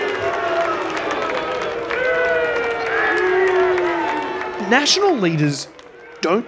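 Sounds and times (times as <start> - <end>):
furious crowd at a grandstand shouting and booing: 0.0 - 6.4
speech: 4.7 - 6.4.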